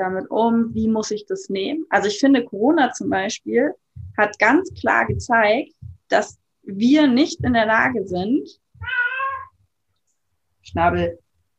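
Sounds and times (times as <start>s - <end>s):
speech: 0.0s - 9.1s, 10.6s - 11.2s
male cat meowing: 8.8s - 9.6s.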